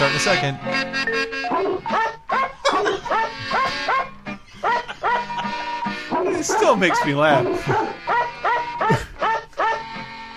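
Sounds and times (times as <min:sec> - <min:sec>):
speech: 0:00.0 - 0:02.1, 0:06.4 - 0:08.0
steady musical backing on a novelty record: 0:00.0 - 0:10.3
edited dog barks pitched into a melody on a novelty record: 0:01.5 - 0:04.2, 0:06.1 - 0:10.1
laughter: 0:01.6 - 0:10.0.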